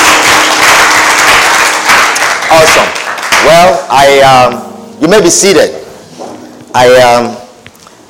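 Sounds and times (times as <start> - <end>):
large crowd applauding as they take their seats: 0.0 - 3.7
speech: 2.6 - 5.8, 6.8 - 7.4.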